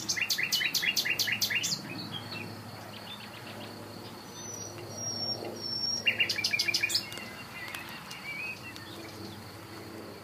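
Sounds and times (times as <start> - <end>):
Common nightingale song with whistles and chirps: 0.0 - 9.4.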